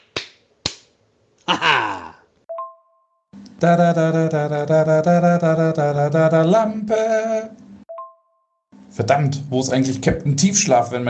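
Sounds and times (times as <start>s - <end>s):
sharp slap smacks: 0.0s - 1.0s
speech: 1.5s - 2.0s, 3.6s - 7.6s, 9.0s - 11.0s.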